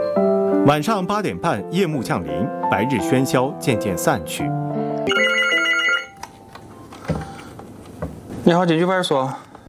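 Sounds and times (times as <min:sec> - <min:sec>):
speech: 0:00.2 - 0:05.2, 0:08.5 - 0:09.4
police station telephone ringing with an electronic trill: 0:05.1 - 0:06.2.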